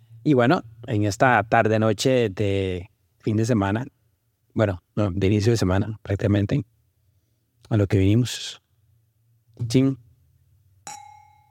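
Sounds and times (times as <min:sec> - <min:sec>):
speech: 0:00.2 - 0:04.0, 0:04.6 - 0:06.8, 0:07.6 - 0:08.6, 0:09.6 - 0:10.0
wine glasses clinking in a toast: 0:10.8 - 0:11.4.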